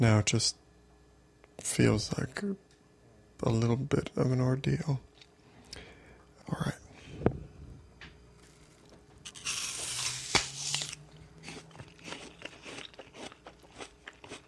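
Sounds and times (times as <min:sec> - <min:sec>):
speech: 0:00.0 - 0:00.6, 0:01.6 - 0:02.6, 0:03.4 - 0:05.1, 0:06.5 - 0:06.8
person biting into a crunchy apple: 0:08.4 - 0:14.4
wet crackly chewing of apple: 0:10.7 - 0:14.4.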